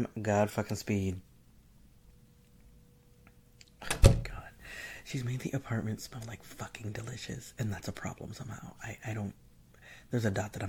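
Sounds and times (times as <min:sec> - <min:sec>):
speech: 0:00.0 - 0:01.3, 0:05.1 - 0:09.4, 0:10.0 - 0:10.6
door shutting with a solid thud: 0:03.8 - 0:04.4.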